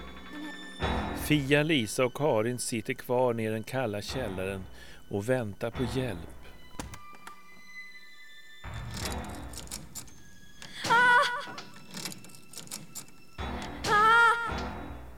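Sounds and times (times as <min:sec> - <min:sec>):
speech: 0:01.3 - 0:06.4
shut cellar door rattling: 0:08.8 - 0:14.8.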